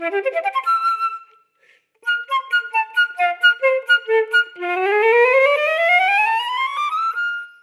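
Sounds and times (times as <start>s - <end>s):
flute: 0.0s - 7.6s.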